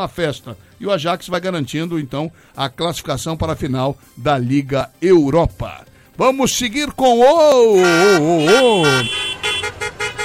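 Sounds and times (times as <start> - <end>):
speech: 0.0 - 9.2
traffic segment jingle made of car horn sounds: 7.8 - 10.2.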